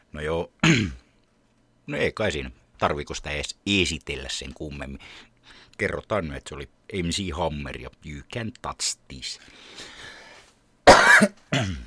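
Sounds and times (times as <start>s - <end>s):
speech: 0.1s - 1.0s, 1.9s - 10.1s, 11.2s - 11.8s
person coughing harshly: 0.6s - 1.0s, 10.9s - 11.8s.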